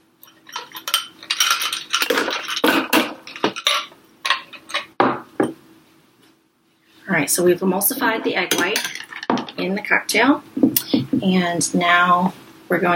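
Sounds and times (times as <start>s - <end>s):
ice cubes tumbling into a cocktail shaker holding an egg-white cocktail: 0.2s - 4.9s
speech: 7.2s - 9.0s, 9.6s - 12.9s.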